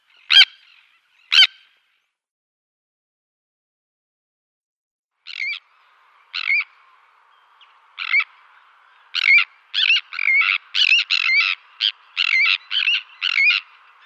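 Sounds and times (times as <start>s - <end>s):
Sandwich tern calls: 0.0s - 1.8s, 5.2s - 14.0s.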